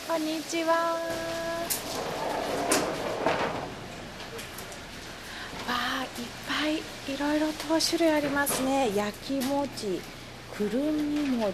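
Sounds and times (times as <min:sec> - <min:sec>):
speech: 0:00.1 - 0:03.7, 0:05.7 - 0:11.5
old wooden sliding door of a traditional sweets shop scraping along its track: 0:01.0 - 0:07.2.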